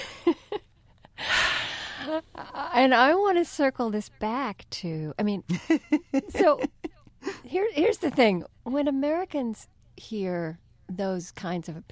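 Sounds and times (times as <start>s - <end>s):
deep breath: 1.2s - 2.1s
speech: 2.1s - 6.8s, 7.5s - 11.9s.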